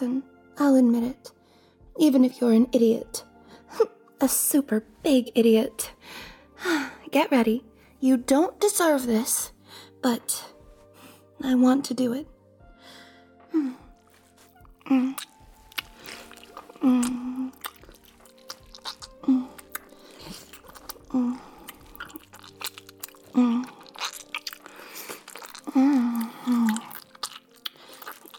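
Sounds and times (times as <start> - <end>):
speech: 0.0 - 1.4, 2.0 - 10.5, 11.4 - 12.3, 13.5 - 13.8, 14.9 - 15.3, 16.8 - 17.6, 21.1 - 21.4, 23.4 - 23.7
person biting and crunchy chewing of food: 13.7 - 28.3.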